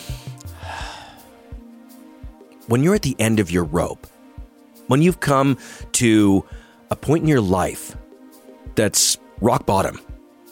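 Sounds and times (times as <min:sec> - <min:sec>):
person taking deep breath: 0:00.0 - 0:01.5, 0:06.5 - 0:06.9
speech: 0:02.7 - 0:04.1, 0:04.9 - 0:08.0, 0:08.8 - 0:10.1.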